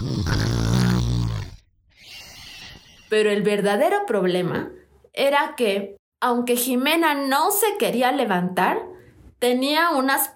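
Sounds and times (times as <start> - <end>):
loud, rumbling nasal snore: 0.0 - 3.1
speech: 0.3 - 0.6, 3.1 - 10.3.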